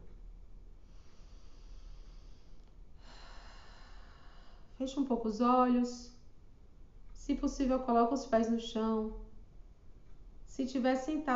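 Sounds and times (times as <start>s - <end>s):
deep breath: 0.8s - 4.8s
speech: 4.8s - 6.2s, 7.2s - 9.2s, 10.5s - 11.3s.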